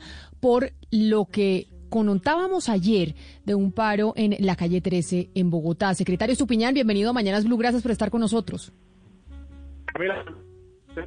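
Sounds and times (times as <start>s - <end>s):
speech: 0.4s - 8.9s, 10.0s - 10.4s
distorted voice through a poor phone line: 9.9s - 10.4s.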